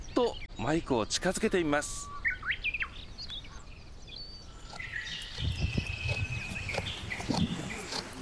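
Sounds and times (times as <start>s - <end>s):
birds chirping and calling: 0.0s - 8.2s
speech: 0.2s - 2.1s
sheep chewing grass while grazing: 2.1s - 8.2s.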